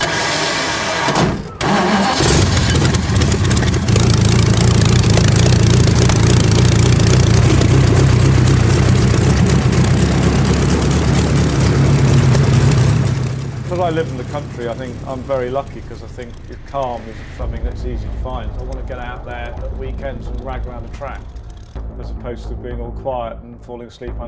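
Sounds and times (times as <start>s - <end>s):
race car engine cranked over by its starter with spark plugs out: 0.0s - 16.6s
speech: 14.6s - 21.4s, 22.0s - 24.2s.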